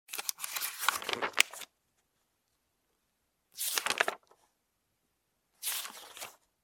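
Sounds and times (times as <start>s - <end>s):
book pages turning: 0.1s - 1.7s, 3.6s - 4.4s, 5.6s - 6.4s.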